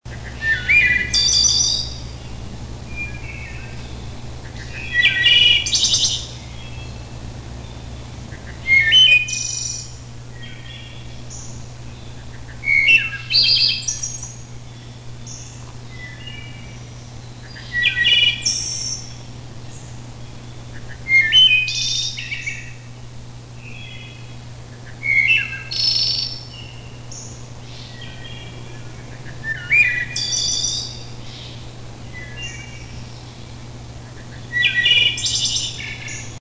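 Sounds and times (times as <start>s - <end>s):
wood thrush long song: 0.1s - 22.9s, 23.6s - 36.3s.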